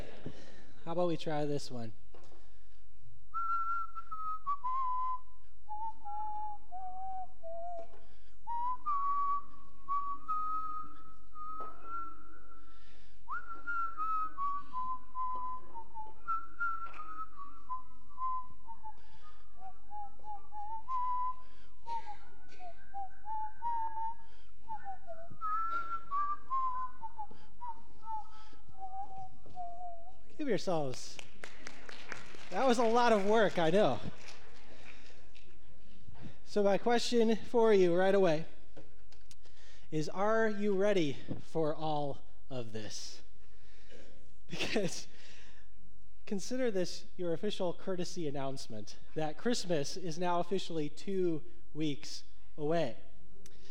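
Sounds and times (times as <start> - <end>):
speech: 0.9 - 2.0, 30.6 - 31.3, 32.5 - 34.2, 36.5 - 38.5, 39.9 - 43.2, 44.5 - 45.1, 46.3 - 53.1
audience whistling a melody in unison: 3.3 - 36.6.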